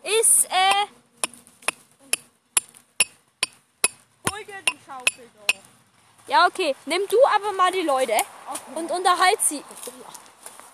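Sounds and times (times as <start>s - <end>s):
hammer blows with bright metallic strikes: 1.7s - 5.6s
speech: 6.3s - 10.2s.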